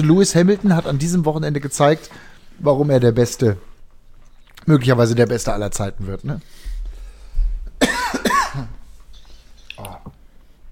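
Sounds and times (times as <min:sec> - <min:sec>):
speech: 0:00.0 - 0:03.7, 0:04.6 - 0:06.7
person coughing in a coughing fit: 0:07.8 - 0:08.8.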